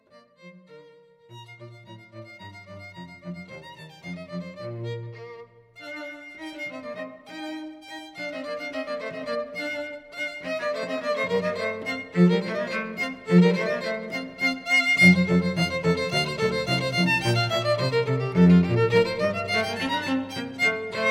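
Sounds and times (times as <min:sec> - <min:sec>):
cello in a duo with violin: 0:00.0 - 0:21.1
violin in a duo with cello: 0:00.0 - 0:21.1.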